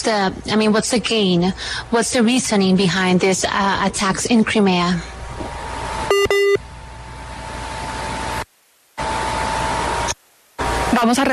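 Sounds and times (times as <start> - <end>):
speech: 0.0 - 5.1, 11.0 - 11.3
noisy phone line hiss and hum: 5.4 - 11.2
short electronic beeps of a WhatsApp call dropping: 6.1 - 6.6.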